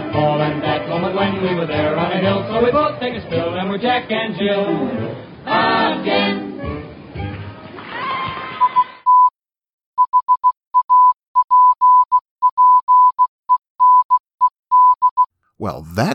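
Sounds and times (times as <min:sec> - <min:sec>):
speech: 0:00.1 - 0:06.8, 0:16.0 - 0:16.1
Morse code beeps: 0:10.0 - 0:15.3.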